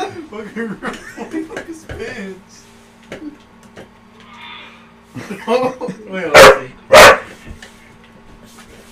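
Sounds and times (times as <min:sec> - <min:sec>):
laughter: 0:00.0 - 0:01.9, 0:05.1 - 0:06.2
speech: 0:00.3 - 0:03.5, 0:05.2 - 0:07.0
dog barking: 0:06.3 - 0:07.3.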